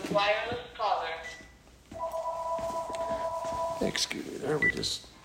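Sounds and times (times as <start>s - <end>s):
speech: 0.1s - 0.6s, 3.9s - 5.1s
phone ringing with short high electronic beeps: 1.2s - 4.0s.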